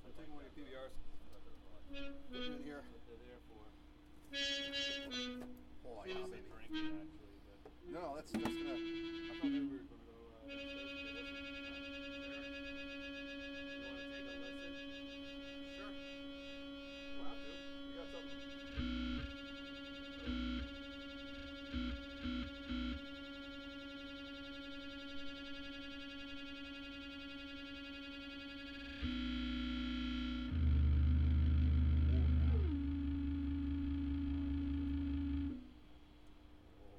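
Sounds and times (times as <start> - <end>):
speech: 0.2 - 11.9
buzzing tone through a distortion pedal: 10.5 - 35.8.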